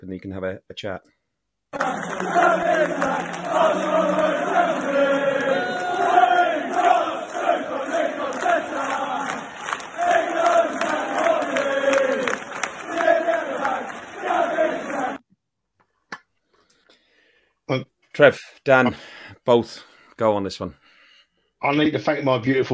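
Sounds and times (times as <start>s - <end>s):
speech: 0.0s - 7.0s, 17.7s - 20.8s, 21.6s - 22.7s
large crowd of football fans cheering and chanting after the game: 1.7s - 15.2s.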